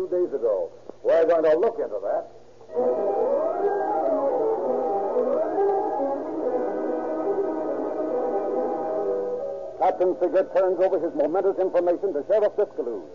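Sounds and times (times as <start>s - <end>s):
speech: 0.0s - 3.3s, 9.8s - 13.1s
police car siren wailing as the car careens out of a driveway: 2.7s - 9.4s.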